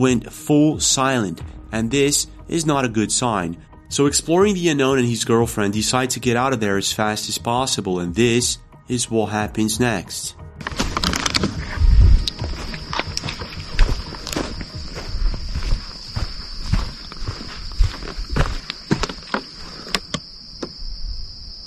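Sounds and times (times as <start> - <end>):
speech: 0.0 - 10.8
footsteps crunching through the woods: 10.6 - 20.1
high insect or cricket drone: 10.6 - 21.6.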